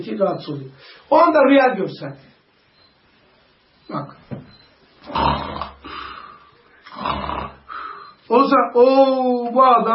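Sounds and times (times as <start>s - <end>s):
speech: 0.0s - 2.3s, 3.9s - 4.2s, 8.3s - 9.9s
rasping snores: 5.1s - 6.3s, 6.9s - 7.7s
quiet breathing: 5.8s - 7.0s, 7.6s - 8.3s.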